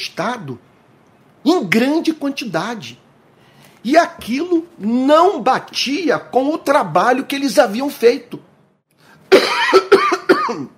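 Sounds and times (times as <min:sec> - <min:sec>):
speech: 0:00.2 - 0:00.8, 0:01.4 - 0:03.0, 0:03.8 - 0:08.5, 0:10.5 - 0:10.7
harsh coughing fit with raspy throaty rattle: 0:09.3 - 0:10.7.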